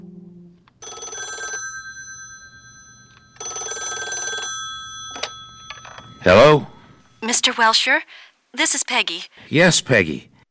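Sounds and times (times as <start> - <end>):
telephone ringing with trilling bell: 0.8 - 7.4
speech: 6.2 - 6.7, 7.4 - 10.3.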